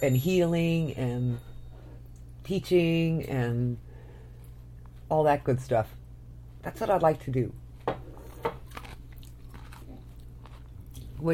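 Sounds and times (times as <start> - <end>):
speech: 0.0 - 1.5, 2.4 - 3.8, 5.1 - 6.0, 6.6 - 8.6
steady low hum: 0.0 - 11.3
softer irregular cucumber chewing crunches: 8.2 - 11.3
person biting into a cucumber with a sharp crunch: 8.4 - 11.2.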